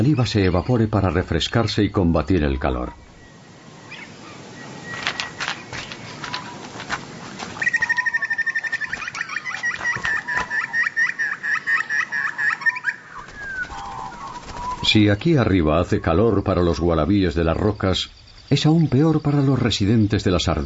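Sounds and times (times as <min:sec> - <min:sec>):
speech: 0:00.0 - 0:03.0, 0:14.9 - 0:20.6
bird squawking in harsh calls on a branch: 0:03.8 - 0:16.8.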